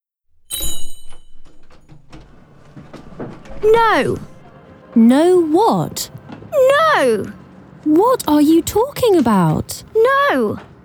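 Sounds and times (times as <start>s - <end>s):
shop door bell jingling: 0.5s - 4.5s
shop door opening: 0.5s - 6.6s
speech: 3.6s - 4.3s, 5.0s - 10.7s.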